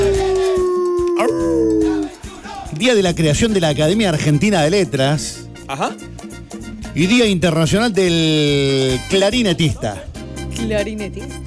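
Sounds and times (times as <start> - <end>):
wolf howling: 0.0 - 2.2
speech: 2.8 - 6.1, 7.0 - 11.4.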